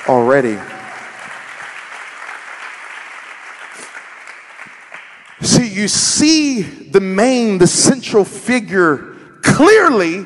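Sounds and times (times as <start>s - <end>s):
speech: 0.0s - 0.7s, 5.4s - 10.2s
audience clapping: 0.0s - 5.7s
sharper individual claps: 0.7s - 5.6s.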